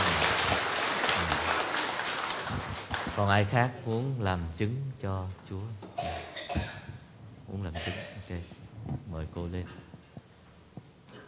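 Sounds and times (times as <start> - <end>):
room full of people applauding: 0.0 - 3.3
speech: 3.2 - 5.9, 7.5 - 8.5, 9.2 - 9.9.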